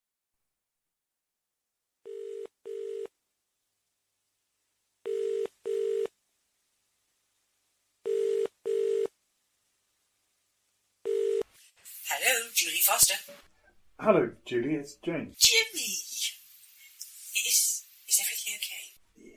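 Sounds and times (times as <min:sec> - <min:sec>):
telephone ringing tone: 0:02.0 - 0:03.1, 0:05.1 - 0:06.1, 0:08.0 - 0:09.1, 0:11.1 - 0:11.5
speech: 0:12.3 - 0:16.1.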